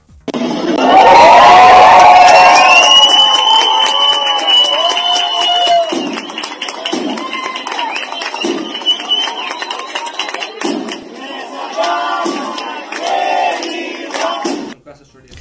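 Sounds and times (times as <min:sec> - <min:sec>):
party crowd cheering and shouting: 0:00.5 - 0:14.8
people clapping: 0:00.7 - 0:14.8
whoops: 0:00.8 - 0:10.5
many voices: 0:09.3 - 0:15.0.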